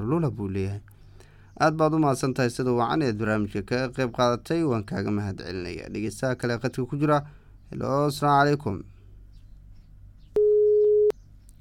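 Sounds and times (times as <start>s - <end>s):
faint hiss: 0.0s - 11.5s
speech: 0.1s - 1.0s, 1.6s - 8.9s
telephone busy tone after a caller's line drops: 10.4s - 11.1s.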